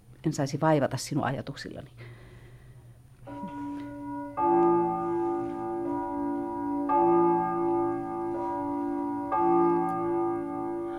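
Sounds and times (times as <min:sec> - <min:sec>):
speech: 0:00.2 - 0:02.2
clock chiming three o'clock: 0:03.3 - 0:10.9.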